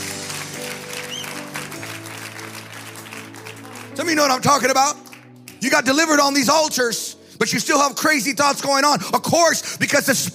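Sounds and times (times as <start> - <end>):
audience applauding: 0.0 - 5.8
whistle: 1.0 - 1.4
speech: 4.0 - 5.0, 5.6 - 10.3.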